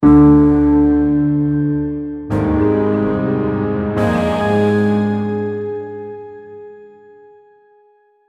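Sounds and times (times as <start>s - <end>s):
suspenseful music: 0.0s - 7.2s.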